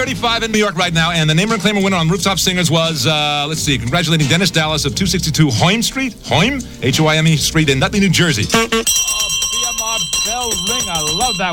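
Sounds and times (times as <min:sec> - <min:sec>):
speech: 0:00.0 - 0:09.4, 0:10.4 - 0:11.5
bell ringing with shimmering high tone: 0:08.6 - 0:11.5.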